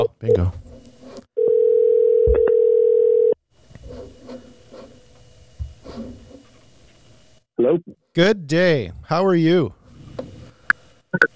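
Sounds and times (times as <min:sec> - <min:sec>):
speech: 0:00.0 - 0:00.6, 0:08.2 - 0:09.8
faint room noise: 0:00.0 - 0:11.3
phone's outgoing ringing tone: 0:01.4 - 0:05.4.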